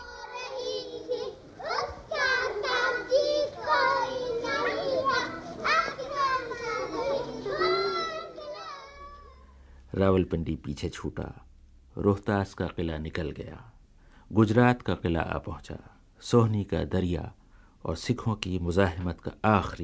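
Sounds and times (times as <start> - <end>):
crowd of young children's high-pitched voices chattering and shouting in alleys: 0.0 - 9.6
speech: 10.0 - 19.8.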